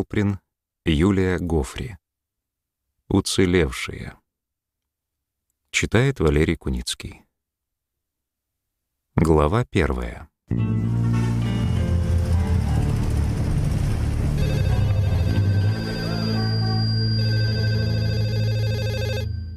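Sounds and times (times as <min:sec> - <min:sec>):
speech: 0:00.0 - 0:02.0, 0:03.1 - 0:04.2, 0:05.7 - 0:07.2, 0:09.2 - 0:11.1
low steady hum: 0:11.2 - 0:19.5
telephone ringing with a trilling electronic ring: 0:14.2 - 0:19.5.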